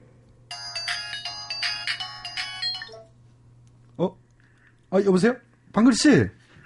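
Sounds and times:
telephone ringing with a warbling electronic tone: 0.5s - 3.1s
speech: 4.0s - 4.2s, 4.9s - 6.4s.

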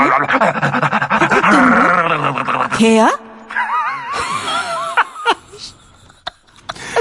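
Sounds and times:
laughter: 0.0s - 2.9s, 3.5s - 6.9s
voice imitating ragged heavy breathing of someone running over a phone call: 0.0s - 3.0s
speech: 0.2s - 1.0s, 2.8s - 3.2s.

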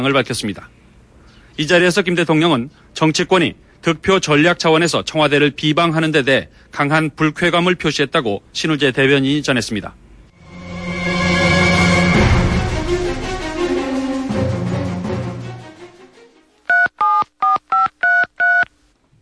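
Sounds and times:
speech: 0.0s - 0.8s, 1.6s - 10.0s
musical passage: 10.4s - 16.6s
telephone keypad touch-tone beeps: 16.7s - 18.7s.

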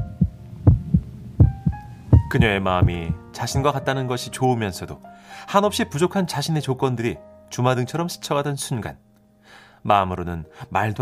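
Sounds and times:
heartbeat sound effect thumps: 0.0s - 3.8s
speech: 2.3s - 11.0s.

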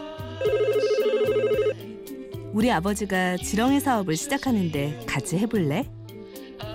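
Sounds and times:
steady musical bed: 0.0s - 6.7s
telephone ringing with a rapid warbling trill: 0.4s - 1.8s
speech: 2.6s - 6.0s.

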